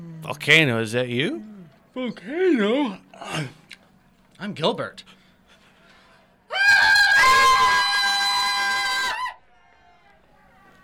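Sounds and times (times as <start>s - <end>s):
speech: 0.3s - 3.6s, 4.4s - 5.2s
person screaming loud sustained high-pitched: 6.5s - 9.3s.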